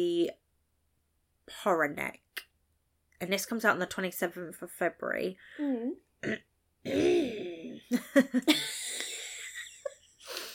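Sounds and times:
speech: 1.6s - 2.2s, 3.2s - 9.0s
old man clearing throat: 6.2s - 7.8s.

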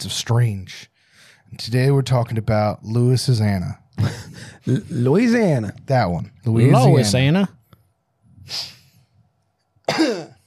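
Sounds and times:
speech: 0.0s - 0.9s, 1.5s - 7.6s, 8.5s - 8.8s, 9.9s - 10.3s
person coughing: 9.9s - 10.4s
throat clearing rasp: 9.9s - 10.4s.

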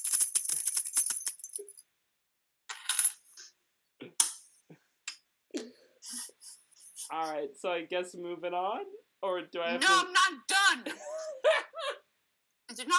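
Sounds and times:
keys jingling: 0.0s - 1.8s
laughter: 6.1s - 7.3s, 9.8s - 12.0s
speech: 7.1s - 11.1s.

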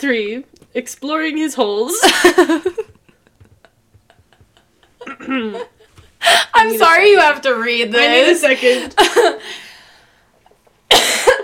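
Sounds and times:
speech: 0.0s - 3.0s, 5.1s - 9.6s
person coughing: 5.0s - 5.7s, 10.9s - 11.4s.

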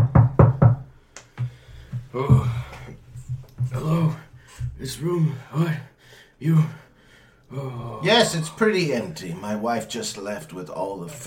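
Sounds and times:
firm knocks on a door: 0.0s - 4.9s
speech: 2.2s - 2.5s, 4.8s - 6.8s, 8.1s - 11.2s.

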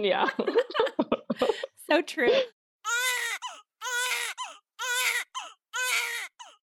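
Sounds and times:
speech: 0.0s - 3.1s
laughter: 0.3s - 2.5s
baby crying: 2.8s - 6.6s.

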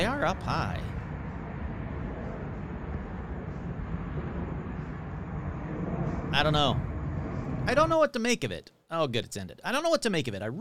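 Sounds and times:
airplane taking off: 0.0s - 8.1s
speech: 0.2s - 1.0s, 6.3s - 6.9s, 7.6s - 10.5s.

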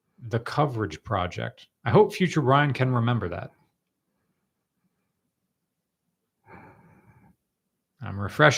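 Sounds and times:
speech: 0.3s - 3.6s, 8.0s - 8.5s
breathy exhale into microphone: 6.4s - 7.4s.

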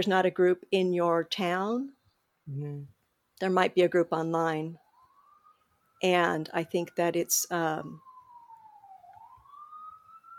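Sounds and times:
speech: 0.0s - 4.8s, 6.0s - 8.1s
emergency siren wailing in a New York City street: 4.1s - 10.3s.

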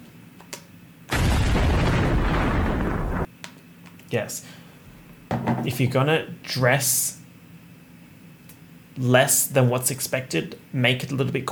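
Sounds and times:
explosion sound effect: 1.1s - 3.3s
speech: 4.1s - 4.6s, 5.6s - 7.2s, 9.0s - 11.5s.

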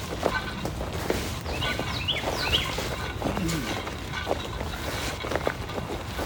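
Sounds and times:
steady outdoor rumble: 0.0s - 6.2s
birds chirping outdoors: 0.2s - 3.9s.

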